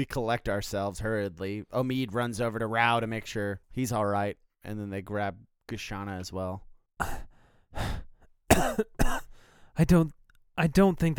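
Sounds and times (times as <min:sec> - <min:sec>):
speech: 0:00.0 - 0:07.2, 0:09.8 - 0:11.1
harsh coughs: 0:07.0 - 0:07.3, 0:08.5 - 0:09.3.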